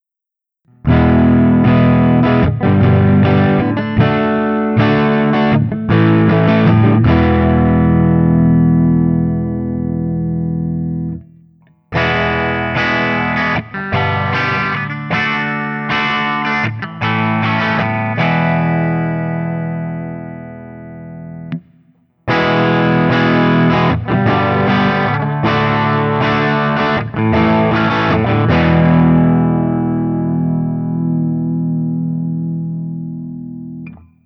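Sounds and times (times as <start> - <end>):
Guild Burnside Crossbow electric guitar playing clean open chords: 0.7 - 34.2.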